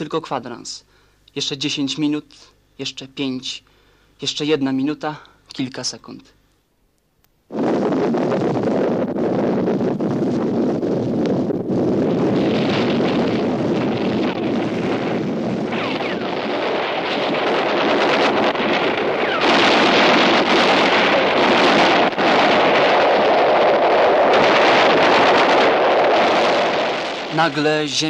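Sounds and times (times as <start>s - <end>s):
speech: 0.0s - 6.4s, 27.4s - 28.0s
heavy artillery barrage with explosions: 7.5s - 28.0s
sharper artillery blasts: 12.3s - 28.0s.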